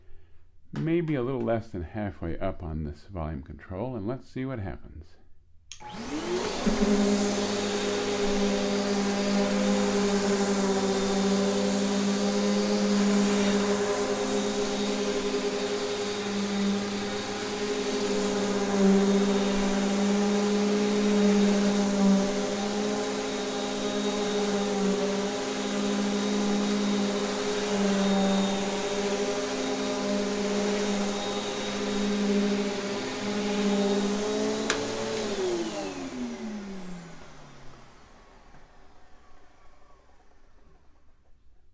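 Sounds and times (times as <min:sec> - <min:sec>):
speech: 0:00.8 - 0:05.2, 0:05.8 - 0:07.6
vacuum cleaner running: 0:05.7 - 0:41.7.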